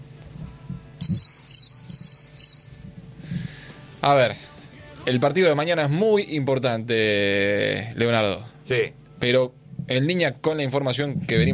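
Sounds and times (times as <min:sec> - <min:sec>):
crickets chirping: 0:01.0 - 0:02.8
speech: 0:01.1 - 0:01.3, 0:04.0 - 0:04.5, 0:05.1 - 0:11.5.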